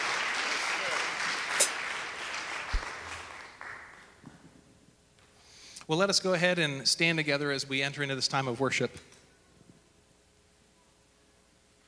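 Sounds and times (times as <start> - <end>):
church audience applauding during a morning service: 0.0 - 4.2
speech: 5.9 - 9.2.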